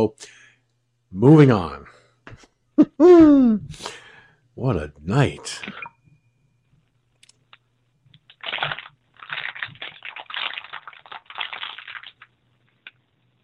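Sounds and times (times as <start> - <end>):
speech: 0.0 - 0.4, 1.1 - 1.9, 2.8 - 4.0, 4.6 - 5.9
plastic water bottle squeezed and crunched: 8.3 - 13.0.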